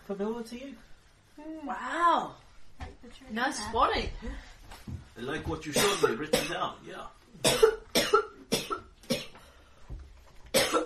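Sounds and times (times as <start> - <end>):
speech: 0.1 - 7.8
light dry coughs: 5.8 - 6.6, 7.4 - 9.4, 10.5 - 10.8.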